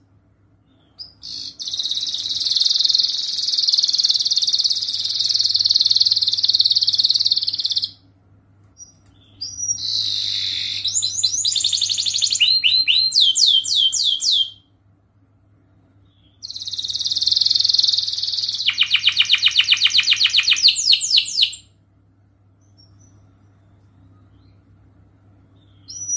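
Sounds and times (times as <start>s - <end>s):
faint hum: 0.0s - 26.1s
canary trilling: 0.6s - 8.0s, 8.8s - 14.7s, 16.0s - 21.8s, 25.4s - 26.1s.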